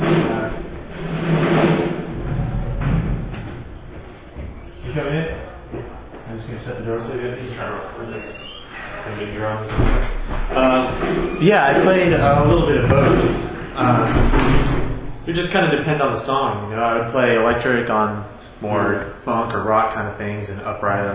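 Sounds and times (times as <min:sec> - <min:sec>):
doors thudding shut: 0:00.0 - 0:05.5, 0:09.7 - 0:15.4
speech: 0:15.4 - 0:21.1.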